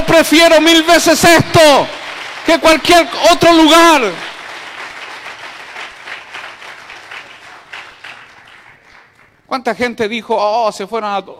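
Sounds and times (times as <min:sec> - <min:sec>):
speech: 0:00.1 - 0:04.2, 0:09.5 - 0:11.3
church audience clapping during a worship gathering: 0:00.5 - 0:09.5.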